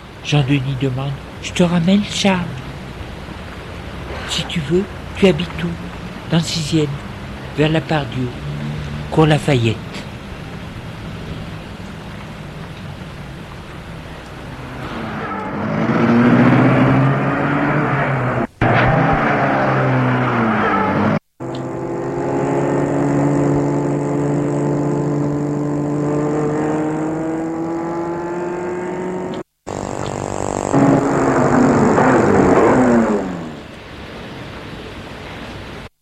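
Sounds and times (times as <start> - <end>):
speech: 0.2 - 2.7, 4.3 - 8.4, 9.1 - 9.9
small Citroën 2CV car engine revving through gear changes: 7.0 - 33.8.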